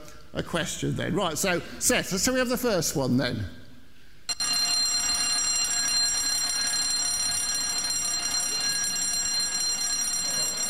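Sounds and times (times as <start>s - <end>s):
speech: 0.4s - 3.6s
loud fire alarm bell ringing with a harsh metallic clang: 4.3s - 10.6s.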